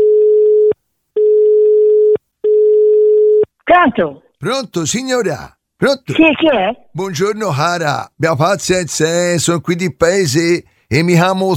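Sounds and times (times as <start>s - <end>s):
telephone line ringing tone before a call: 0.0s - 3.5s
speech: 3.8s - 11.5s.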